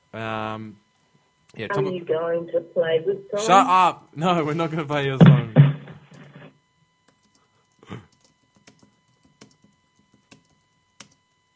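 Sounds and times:
speech: 0:00.2 - 0:00.9, 0:01.5 - 0:05.6
typing on a keyboard: 0:07.1 - 0:11.5.

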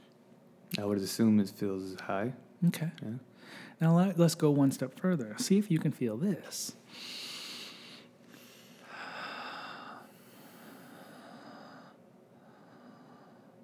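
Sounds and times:
speech: 0:00.7 - 0:07.3
deep breaths drawn in: 0:03.4 - 0:03.8, 0:06.8 - 0:13.6.

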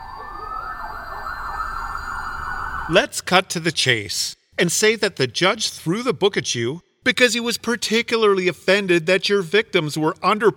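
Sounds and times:
emergency vehicle siren wailing: 0:00.0 - 0:03.0
speech: 0:02.9 - 0:10.5.

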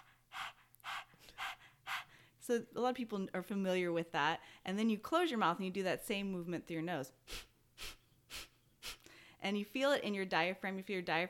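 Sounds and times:
person imitating open-mouthed dog panting with tongue out: 0:00.0 - 0:02.2, 0:07.2 - 0:09.1
speech: 0:02.5 - 0:07.3, 0:09.4 - 0:11.2.

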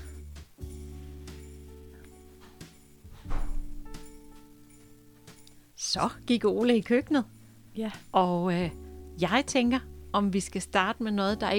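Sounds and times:
door slamming shut with a heavy booming thud: 0:03.2 - 0:03.8
speech: 0:06.0 - 0:11.5.

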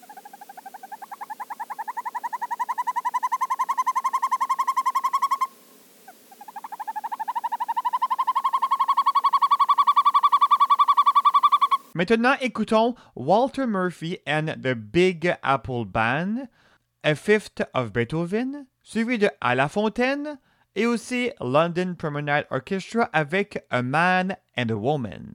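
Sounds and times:
boreal forest bird calling in rapid trills of mellow notes: 0:00.0 - 0:12.0
speech: 0:12.0 - 0:25.3.

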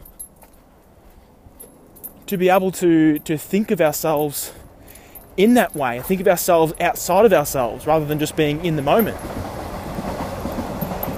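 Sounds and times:
wheels clacking on rails: 0:01.5 - 0:11.1
speech: 0:02.3 - 0:04.6, 0:05.4 - 0:09.5
train rumbling past: 0:04.4 - 0:11.1.

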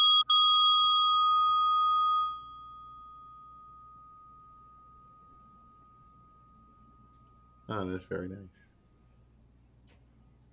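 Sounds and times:
bell ringing: 0:00.0 - 0:08.3
speech: 0:07.7 - 0:08.7.

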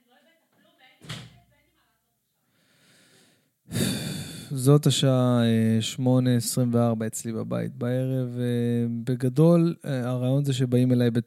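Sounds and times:
door shutting at home: 0:01.0 - 0:01.4
speech: 0:04.5 - 0:11.2.

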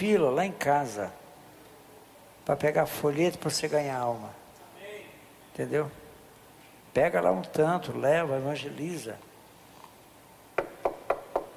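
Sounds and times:
speech: 0:00.0 - 0:01.2, 0:02.5 - 0:04.4, 0:05.6 - 0:06.0, 0:06.9 - 0:09.3
firm knocking on a door: 0:10.6 - 0:11.5.

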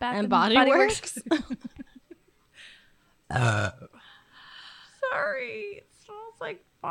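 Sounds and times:
speech: 0:00.0 - 0:01.7, 0:03.3 - 0:03.9, 0:05.1 - 0:06.8
loud throaty burp: 0:03.3 - 0:03.9.

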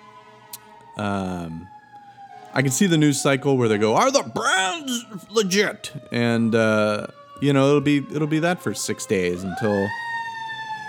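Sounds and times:
police siren: 0:00.0 - 0:10.8
speech: 0:01.0 - 0:01.8, 0:02.5 - 0:10.1.

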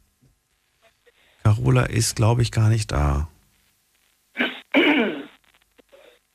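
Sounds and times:
speech: 0:01.5 - 0:03.3
caller coughing on telephone line: 0:04.4 - 0:05.4.

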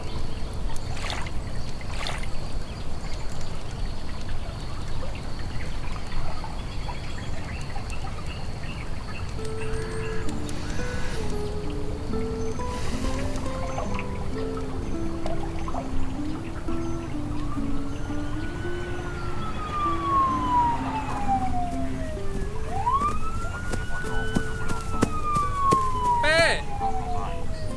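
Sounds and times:
soft melodic tones: 0:00.0 - 0:00.8, 0:08.6 - 0:27.7
river water flowing in a steady rush: 0:00.0 - 0:27.7.

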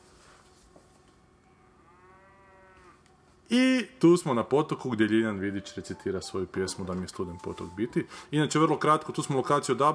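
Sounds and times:
steady hiss: 0:00.0 - 0:09.9
cow mooing: 0:01.6 - 0:03.0
speech: 0:03.5 - 0:09.9.

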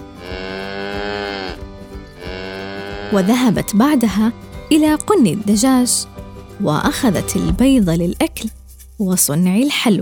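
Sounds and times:
cow mooing: 0:00.0 - 0:03.7
speech: 0:03.1 - 0:10.0.

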